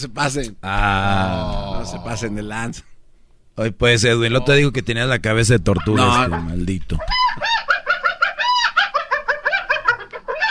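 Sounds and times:
speech: 0:00.0 - 0:02.9, 0:03.6 - 0:07.2
chicken-like clucking with bark-like edge: 0:05.8 - 0:10.5.

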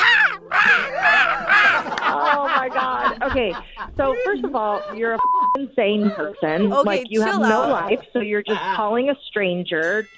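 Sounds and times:
crow cawing: 0:00.0 - 0:01.9
laughter: 0:00.0 - 0:09.1
speech: 0:03.3 - 0:10.1.

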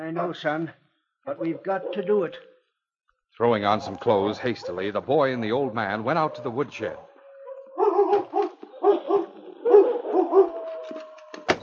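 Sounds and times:
speech: 0:00.0 - 0:02.5, 0:03.4 - 0:07.1
gray wolf growling in rough throaty bursts: 0:03.6 - 0:11.3.

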